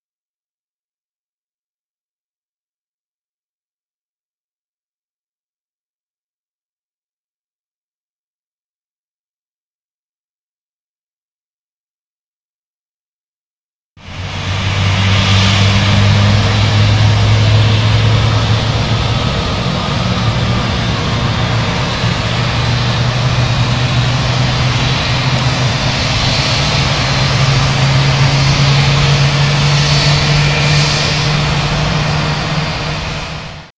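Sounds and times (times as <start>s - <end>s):
V2500 jet engine starting up on an A320: 14.0s - 33.7s.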